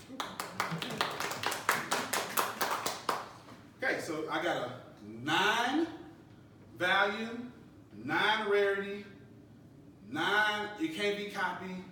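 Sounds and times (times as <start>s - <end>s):
hand claps: 0.0s - 3.6s
speech: 4.1s - 6.0s, 6.8s - 9.1s, 10.1s - 11.8s.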